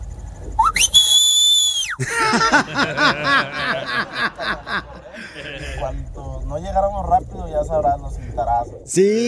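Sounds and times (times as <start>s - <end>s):
loud sharp human mouth whistle to call children: 0.6s - 2.0s
speech: 2.0s - 4.4s, 5.4s - 9.2s
bursts of rhythmic laughter: 2.0s - 5.9s.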